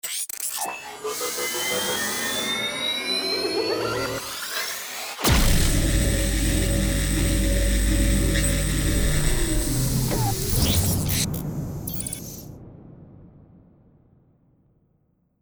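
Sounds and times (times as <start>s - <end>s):
time machine sound effect: 0.4s - 12.4s.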